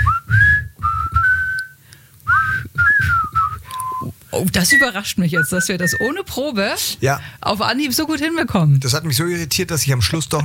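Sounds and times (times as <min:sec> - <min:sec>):
rhythmic whistling: 0:00.0 - 0:06.4
speech: 0:04.4 - 0:10.4.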